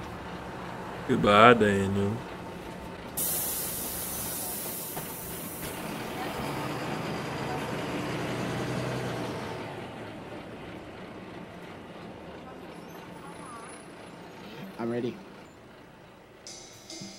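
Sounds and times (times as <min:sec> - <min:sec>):
bus idling: 0:00.0 - 0:17.1
speech: 0:01.1 - 0:02.3, 0:15.0 - 0:15.2
bus air brakes hissing: 0:03.2 - 0:06.0.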